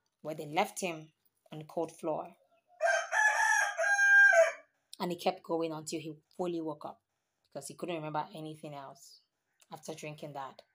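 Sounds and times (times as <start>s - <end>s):
speech: 0.2s - 2.4s, 5.0s - 7.0s, 7.6s - 10.7s
cockerel crowing: 2.8s - 4.7s.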